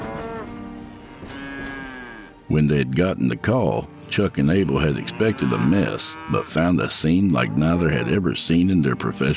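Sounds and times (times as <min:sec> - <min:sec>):
cows mooing: 0:00.0 - 0:02.4, 0:04.8 - 0:08.4
speech: 0:02.5 - 0:09.3.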